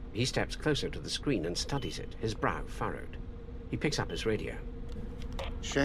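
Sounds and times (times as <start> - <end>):
speech: 0.1 - 5.0, 5.6 - 5.8
ship radar beeping: 1.7 - 2.0.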